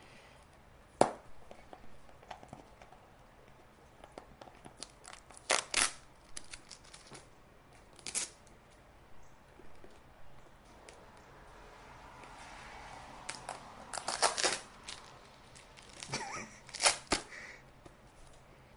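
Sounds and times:
packing tape being pulled off a box: 0:04.8 - 0:07.2, 0:08.0 - 0:08.4, 0:13.3 - 0:17.3.

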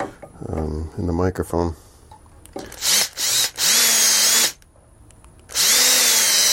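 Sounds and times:
speech: 0:00.5 - 0:01.8
power drill drilling holes: 0:02.6 - 0:04.6, 0:05.5 - 0:06.5.

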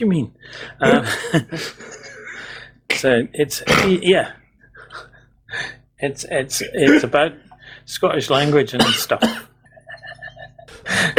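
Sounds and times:
speech: 0:00.0 - 0:02.1, 0:02.9 - 0:09.5
laughter: 0:00.8 - 0:02.4, 0:09.7 - 0:11.1
harsh loud coughs: 0:03.6 - 0:04.0, 0:08.5 - 0:09.6.

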